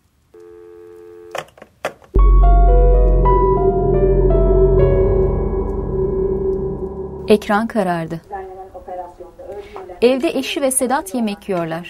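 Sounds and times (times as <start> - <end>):
telephone ringback tone: 0.4 - 1.4
loud sustained droning wash of layered tones: 2.2 - 8.6
speech: 7.3 - 8.3, 10.0 - 11.8.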